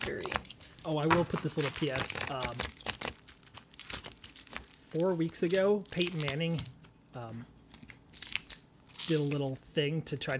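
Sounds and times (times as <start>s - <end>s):
tarot cards being shuffled: 0.0s - 6.8s
speech: 0.8s - 2.8s, 4.9s - 7.5s, 9.1s - 10.3s.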